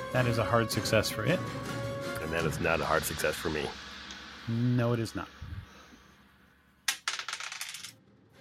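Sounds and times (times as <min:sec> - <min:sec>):
speech: 0:00.1 - 0:03.8, 0:04.4 - 0:05.4
dice clattering across a table: 0:06.9 - 0:08.0.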